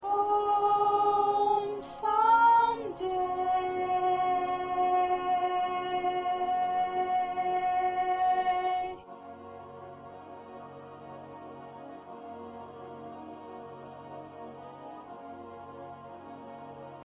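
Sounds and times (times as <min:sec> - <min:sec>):
soprano voice: 0:00.0 - 0:09.0.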